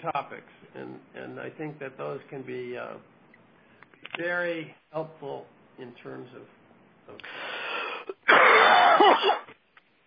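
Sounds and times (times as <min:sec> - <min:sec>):
speech: 0:00.0 - 0:03.2, 0:04.0 - 0:09.6
harsh raspy hacking cough with a wheezy quality: 0:08.1 - 0:09.6.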